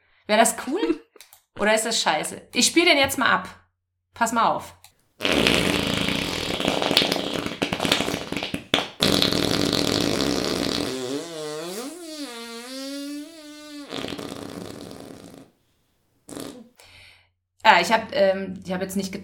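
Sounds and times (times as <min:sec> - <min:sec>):
speech: 0:00.3 - 0:01.0, 0:01.6 - 0:03.6, 0:04.2 - 0:05.7, 0:17.8 - 0:19.2
long wet fart: 0:05.2 - 0:15.6, 0:16.3 - 0:16.8.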